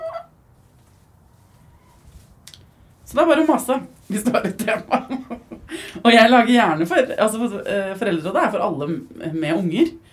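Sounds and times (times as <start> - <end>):
faint hen cluck: 0.0 - 0.4, 1.4 - 2.2
hen squawking in a henhouse: 0.0 - 0.4, 1.5 - 2.1
brief rustle: 0.6 - 3.1
speech: 3.1 - 10.1
laughter: 4.2 - 6.0.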